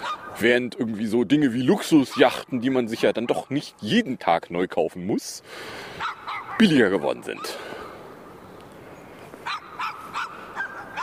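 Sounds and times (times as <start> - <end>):
dog barking at another dog: 0.0 - 0.4, 2.0 - 2.4, 6.0 - 6.7, 9.4 - 11.0
speech: 0.4 - 7.7.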